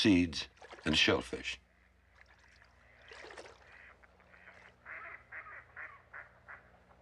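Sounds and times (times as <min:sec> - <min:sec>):
speech: 0:00.0 - 0:01.6
splashing or flapping: 0:00.5 - 0:01.2, 0:02.1 - 0:04.6
black duck quacking: 0:03.0 - 0:06.9.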